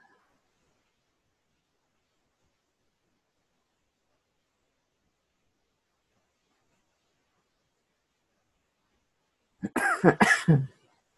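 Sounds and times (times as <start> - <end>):
person coughing harsh raspy coughs: 9.6 - 10.8.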